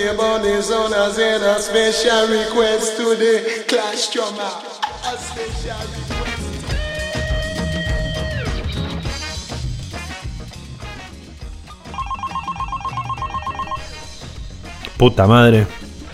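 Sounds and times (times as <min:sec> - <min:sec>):
speech: 0:00.0 - 0:06.6, 0:15.0 - 0:15.8
busy music track with drums and synth tones: 0:05.5 - 0:14.8
telephone ringing with a rapid electronic trill: 0:11.8 - 0:14.0.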